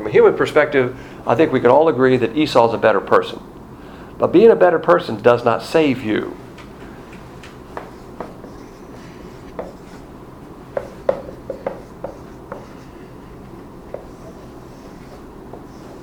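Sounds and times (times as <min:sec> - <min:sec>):
low steady hum: 0:00.0 - 0:16.0
speech: 0:00.1 - 0:03.5, 0:04.2 - 0:06.4
drawing on a board: 0:07.6 - 0:10.1, 0:10.7 - 0:16.0.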